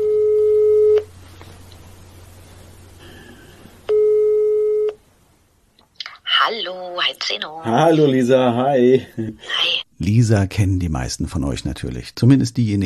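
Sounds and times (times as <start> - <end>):
telephone ringback tone: 0.0 - 1.0, 3.9 - 5.0
speech: 7.2 - 12.8.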